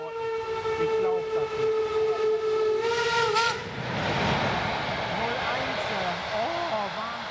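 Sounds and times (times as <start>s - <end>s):
long steady train whistle at Schwanheide station in Germany: 0.0s - 3.7s
train rumbling and clattering at Schwanheide station in Germany: 0.0s - 7.3s.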